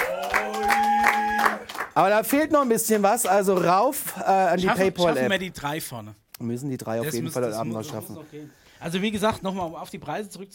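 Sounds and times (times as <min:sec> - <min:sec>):
applause: 0:00.0 - 0:04.2
speech: 0:02.0 - 0:10.5.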